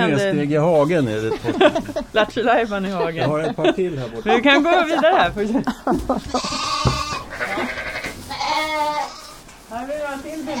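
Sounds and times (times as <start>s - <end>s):
speech: 0.1s - 6.9s
laughter: 1.2s - 6.9s
short knocks and rustles: 5.0s - 7.4s
lambs bleating: 6.3s - 9.4s.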